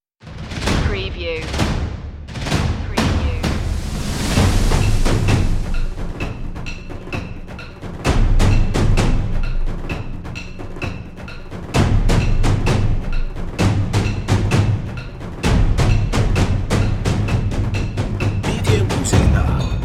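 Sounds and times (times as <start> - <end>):
trailer percussion without drums: 0.2 - 19.8.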